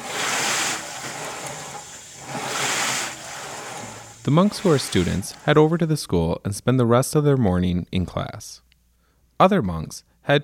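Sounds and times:
water churning inside a water rowing machine tank: 0.0s - 5.6s
speech: 4.2s - 8.6s, 9.4s - 10.4s.

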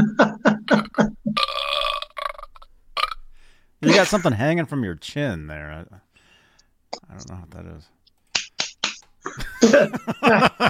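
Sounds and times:
person burping: 0.0s - 3.2s
laughter: 3.8s - 4.4s, 9.3s - 10.6s
speech: 3.8s - 6.1s, 6.9s - 8.0s, 9.2s - 10.6s.

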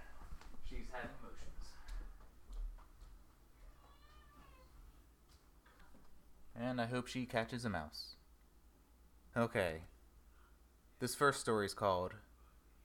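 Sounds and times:
speech: 0.7s - 1.8s, 6.6s - 8.2s, 9.4s - 9.9s, 11.0s - 12.3s
domestic cat meowing: 3.6s - 4.8s.

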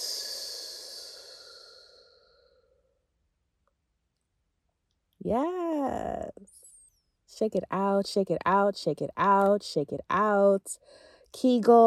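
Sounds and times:
long breathy exhale after a held breath: 0.0s - 2.9s
speech: 5.2s - 6.3s, 7.3s - 11.8s.

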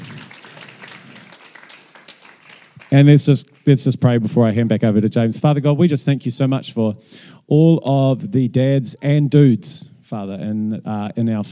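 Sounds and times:
audience applause: 0.0s - 4.0s
speech: 2.9s - 11.5s.

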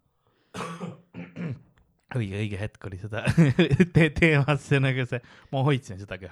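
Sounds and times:
person coughing after laughing: 0.6s - 1.8s
speech: 2.1s - 6.3s
laughter: 3.2s - 4.4s.

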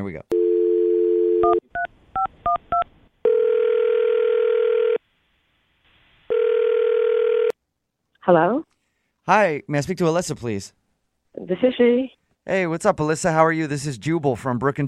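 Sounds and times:
speech: 0.0s - 0.3s, 8.3s - 8.7s, 9.3s - 10.8s, 11.4s - 14.8s
telephone dial tone: 0.3s - 1.9s, 3.2s - 5.0s, 6.3s - 7.6s.

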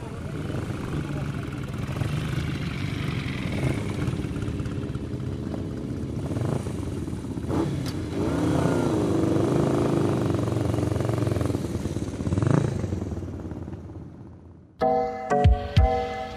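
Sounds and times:
motorcycle engines rumbling while ridden slowly: 0.0s - 14.8s
brief musical jingle: 14.8s - 16.3s.

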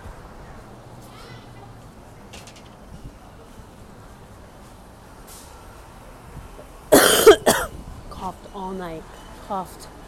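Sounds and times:
harsh loud coughs: 6.9s - 7.7s.

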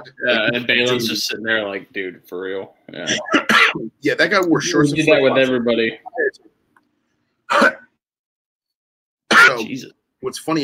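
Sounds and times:
speech: 0.0s - 6.5s, 7.5s - 7.8s, 9.6s - 10.6s
single short harsh cough: 3.1s - 3.9s, 7.5s - 8.0s, 9.3s - 9.7s.

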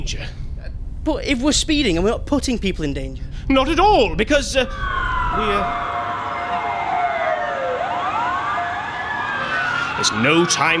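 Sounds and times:
speech: 0.0s - 0.4s, 1.0s - 6.0s, 10.0s - 10.7s
steady rumble: 0.0s - 9.3s
emergency vehicle siren wailing: 4.6s - 10.7s.

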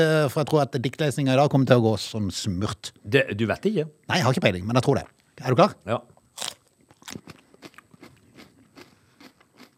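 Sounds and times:
speech: 0.0s - 6.5s
biting and crunching a chili pepper: 6.3s - 9.7s.

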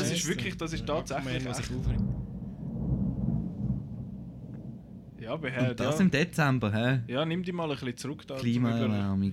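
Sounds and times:
speech: 0.2s - 2.2s, 5.3s - 9.3s
thunder after a lightning flash with sharp crack and rolling rumble: 1.4s - 5.6s.

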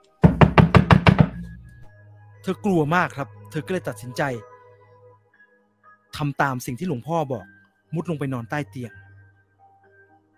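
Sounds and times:
knocking on a wooden door: 0.2s - 1.6s
speech: 2.4s - 4.5s, 6.2s - 9.0s.

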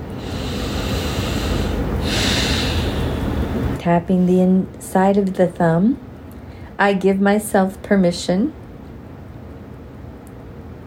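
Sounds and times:
deep breath in and out: 0.0s - 3.8s
speech: 3.8s - 6.1s, 6.8s - 8.6s.

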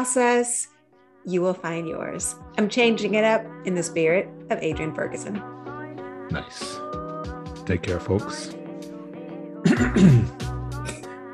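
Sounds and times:
speech: 0.0s - 5.6s, 6.3s - 7.0s, 7.7s - 8.6s, 9.8s - 10.4s
person clearing throat: 9.6s - 11.0s.

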